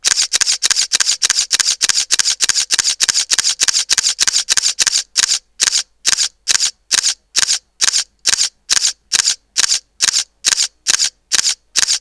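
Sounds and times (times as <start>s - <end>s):
Olympus E-450 camera shutter continuous shooting: 0.0s - 11.9s.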